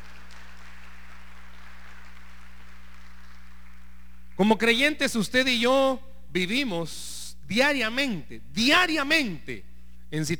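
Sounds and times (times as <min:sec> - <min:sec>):
crowd applauding: 0:00.0 - 0:04.2
low steady hum: 0:00.0 - 0:10.3
speech: 0:04.4 - 0:10.3.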